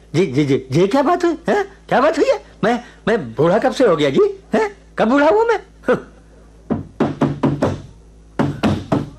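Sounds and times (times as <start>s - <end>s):
speech: 0.1s - 6.1s
police knocking firmly on a wooden door: 6.7s - 9.1s.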